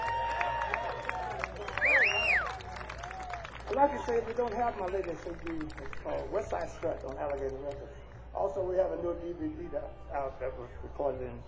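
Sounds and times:
scattered sharp claps: 0.0s - 7.8s
crowd applauding and cheering for a band: 0.0s - 7.9s
loud wavering whistle: 1.6s - 2.6s
speech: 3.7s - 11.4s.

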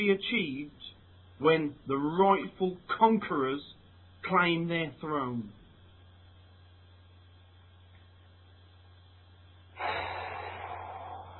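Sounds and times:
speech: 0.0s - 5.6s
deep inhalation: 9.7s - 11.3s.

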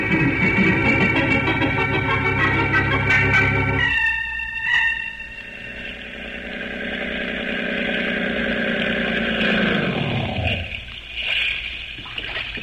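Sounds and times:
motorboat engine droning: 0.0s - 4.0s, 5.1s - 11.0s
faint water splashing: 5.6s - 12.6s.

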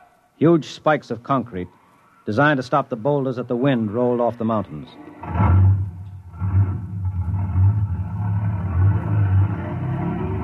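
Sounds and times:
speech: 0.4s - 5.5s
heavy engine rumble of a large vehicle getting under way: 5.2s - 10.4s.

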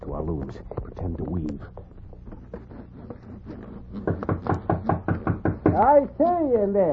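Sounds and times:
speech: 0.4s - 2.0s, 5.8s - 6.9s
firm knocking on a wooden door: 4.0s - 6.0s.

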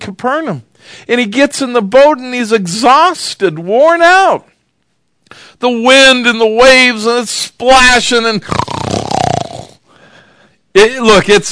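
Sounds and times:
speech: 0.1s - 4.5s, 5.3s - 8.7s, 10.8s - 11.4s
voice imitating snoring during a sermon: 8.4s - 9.8s.

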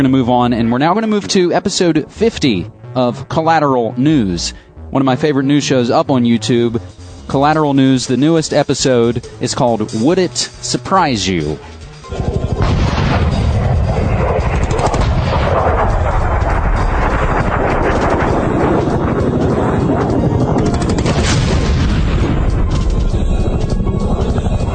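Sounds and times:
speech: 0.0s - 12.4s
anti-aircraft gunfire at night: 12.0s - 24.7s
explosions at night: 12.0s - 24.7s.

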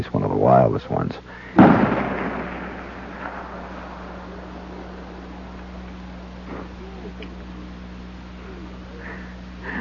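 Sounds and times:
speech: 0.0s - 1.7s
steady low hum: 0.0s - 9.7s
big game rifle gunshot in Alaska: 1.6s - 6.8s
laughter: 6.5s - 9.7s.

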